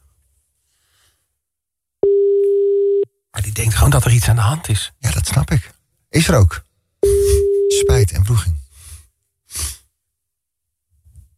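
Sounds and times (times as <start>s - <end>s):
ringback tone on an outgoing unanswered phone call: 2.0s - 3.1s, 7.0s - 8.0s
speech: 3.6s - 8.6s.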